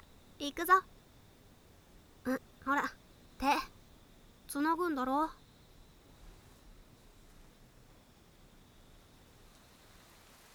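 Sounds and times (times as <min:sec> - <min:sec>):
light rain falling: 0:00.0 - 0:10.5
speech: 0:00.4 - 0:01.0, 0:02.2 - 0:02.8, 0:04.7 - 0:05.4.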